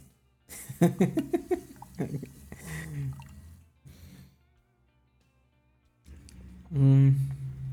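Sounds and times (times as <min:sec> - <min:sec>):
laughter: 0:00.5 - 0:03.1
beer with still-active yeast fizzing: 0:00.6 - 0:03.6
speech: 0:00.8 - 0:03.2, 0:06.7 - 0:07.3.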